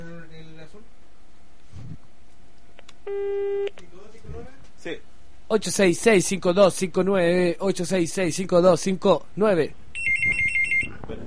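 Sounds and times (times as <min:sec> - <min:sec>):
telephone line tone during a call: 0:03.1 - 0:03.7, 0:10.0 - 0:11.0
speech: 0:04.8 - 0:09.8.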